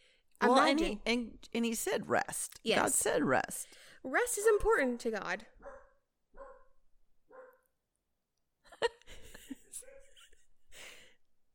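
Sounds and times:
speech: 0:00.5 - 0:05.8
small dachshund yapping and barking: 0:05.6 - 0:07.6.

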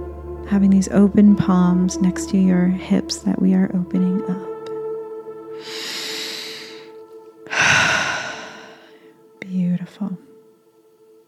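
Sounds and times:
speech: 0:00.5 - 0:04.5
slow deep breathing during a guided breathwork exercise: 0:05.6 - 0:09.3.

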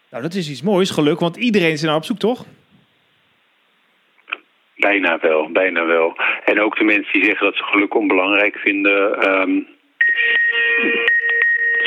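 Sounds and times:
speech: 0:00.1 - 0:02.6, 0:04.8 - 0:11.1
mobile phone electronic ringtone beeping: 0:10.0 - 0:11.8.

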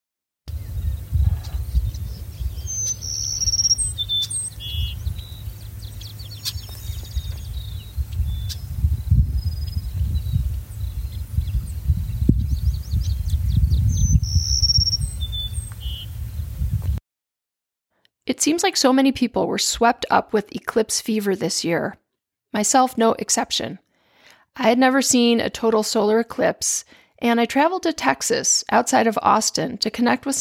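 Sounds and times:
long-billed sparrow singing a melodious song: 0:00.5 - 0:16.4
steady low rumble: 0:00.5 - 0:17.0
speech: 0:18.3 - 0:23.8, 0:24.6 - 0:30.3.

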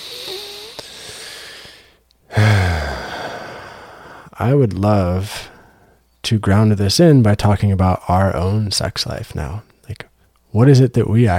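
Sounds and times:
deep breath in and out ending in a sigh-like exhale: 0:00.0 - 0:04.4
speech: 0:04.4 - 0:05.5, 0:06.2 - 0:11.3.

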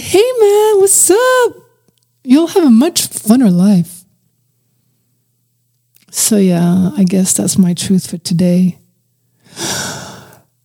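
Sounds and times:
speech: 0:00.0 - 0:04.0, 0:06.1 - 0:08.8
heavy exhale: 0:09.4 - 0:10.4.

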